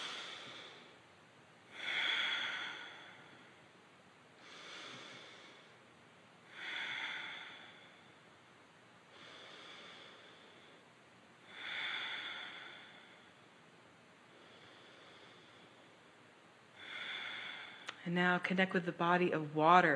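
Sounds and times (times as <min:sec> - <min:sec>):
slow deep breaths in and out through the nose during a guided breathing exercise: 0:00.0 - 0:01.0, 0:01.7 - 0:03.7, 0:04.4 - 0:05.9, 0:06.5 - 0:08.3, 0:09.1 - 0:13.6, 0:14.2 - 0:16.1, 0:16.8 - 0:18.0
speech: 0:18.0 - 0:19.9.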